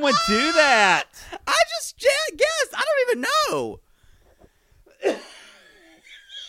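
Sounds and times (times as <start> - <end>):
speech: 0.0 - 3.8
person coughing: 5.0 - 6.4.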